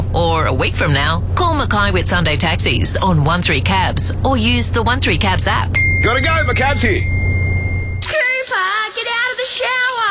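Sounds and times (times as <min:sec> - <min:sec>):
low hum: 0:00.0 - 0:08.0
speech: 0:00.4 - 0:07.2
shower water spraying: 0:08.0 - 0:10.0.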